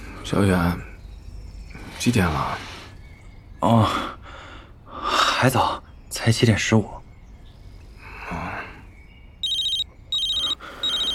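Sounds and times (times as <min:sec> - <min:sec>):
speech: 0:00.3 - 0:00.9, 0:02.0 - 0:02.7, 0:03.6 - 0:04.2, 0:05.4 - 0:07.0
telephone ringing with bright electronic warbling ringtone: 0:09.4 - 0:11.1.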